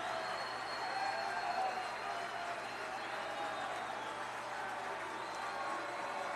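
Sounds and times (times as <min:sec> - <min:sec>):
large baseball stadium crowd roaring and cheering: 0:00.0 - 0:06.3.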